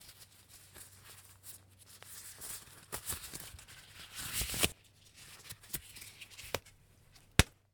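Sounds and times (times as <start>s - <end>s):
medical latex glove being put on: 1.9s - 7.5s.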